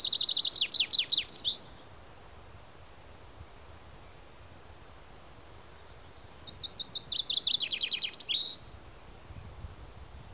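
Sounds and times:
common chaffinch Fringilla coelebs song: 0.0 - 2.2, 2.9 - 10.3.

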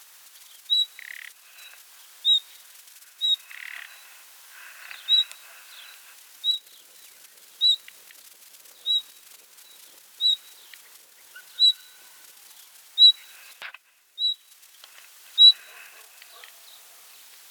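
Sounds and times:
faint chirping: 0.3 - 17.5
Common nightingale Luscinia megarhynchos whistled calls: 0.7 - 2.5, 3.2 - 4.0, 4.9 - 6.8, 7.6 - 7.9, 8.8 - 12.2, 13.0 - 13.3, 14.2 - 14.5, 15.4 - 15.8.

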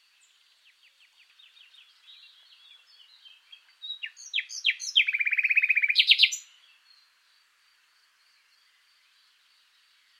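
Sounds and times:
common nightingale Luscinia megarhynchos singing: 0.0 - 10.1.

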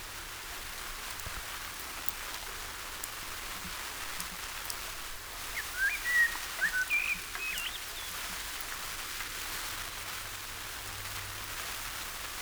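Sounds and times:
faint background noise: 0.0 - 12.4
common blackbird whistled notes: 5.5 - 8.2.

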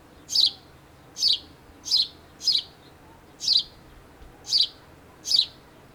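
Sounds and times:
house sparrow Passer domesticus chirping: 0.2 - 3.8, 4.5 - 5.6.

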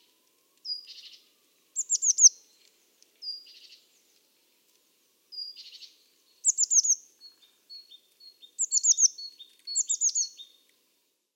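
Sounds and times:
Eurasian blue tit Cyanistes caeruleus thin piping notes: 0.6 - 3.9, 5.4 - 10.6.

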